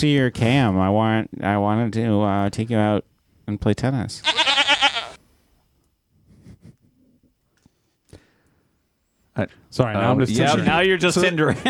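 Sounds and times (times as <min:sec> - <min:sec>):
speech: 0:00.0 - 0:04.4, 0:09.4 - 0:11.6
goat bleating: 0:04.2 - 0:05.2.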